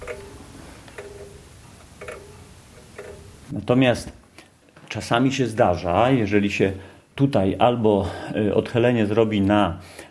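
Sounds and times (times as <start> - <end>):
mechanical wall clock ticking: 0.0 - 3.4
faint hum: 0.0 - 10.0
speech: 3.5 - 4.2, 4.9 - 10.0.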